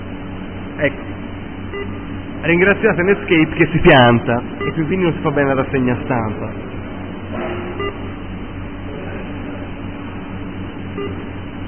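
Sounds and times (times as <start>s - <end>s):
low hum: 0.0s - 11.6s
speech: 0.8s - 1.2s, 1.8s - 6.8s
electronic notification beeps from an incoming message: 7.8s - 8.0s, 11.0s - 11.2s.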